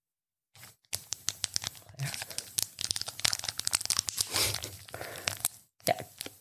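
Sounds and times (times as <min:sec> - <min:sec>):
condom wrapper being torn open: 0:00.9 - 0:05.6.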